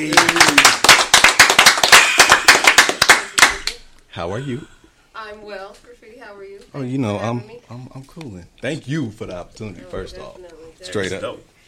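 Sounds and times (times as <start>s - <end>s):
speech: 0.0s - 0.8s, 4.2s - 11.5s
small group clapping to welcome a guest: 0.0s - 3.9s.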